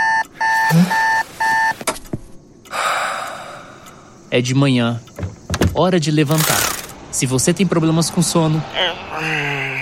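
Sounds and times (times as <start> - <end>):
electronic alarm clock beeping: 0.0 - 1.7
speech: 0.7 - 1.0, 4.3 - 5.1, 5.8 - 9.7.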